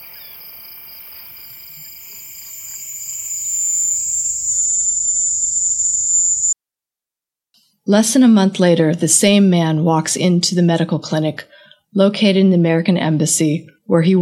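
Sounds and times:
loud chorus of crickets trilling: 0:00.0 - 0:06.6
speech: 0:07.9 - 0:14.2.

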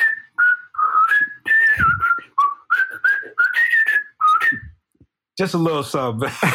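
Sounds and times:
person whistling a short lively melody: 0:00.0 - 0:04.9
speech: 0:05.4 - 0:06.5.

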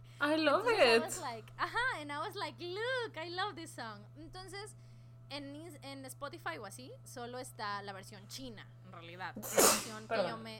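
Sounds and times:
speech: 0:00.2 - 0:10.5
loud sneeze: 0:09.4 - 0:10.2.

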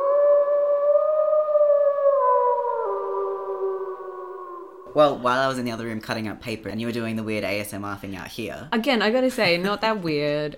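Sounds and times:
wolf howl: 0:00.0 - 0:05.0
speech: 0:05.0 - 0:10.5.

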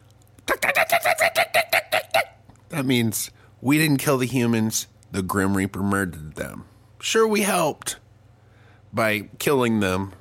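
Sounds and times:
person imitating dolphin chatter with sharp clucking clicks: 0:00.0 - 0:02.7
speech: 0:02.8 - 0:08.0, 0:08.9 - 0:10.1.

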